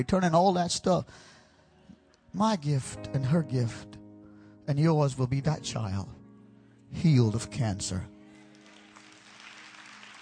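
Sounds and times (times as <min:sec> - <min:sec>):
speech: 0:00.0 - 0:01.4, 0:02.3 - 0:04.0, 0:04.7 - 0:06.2, 0:06.9 - 0:08.1
crowd clapping: 0:08.3 - 0:10.2.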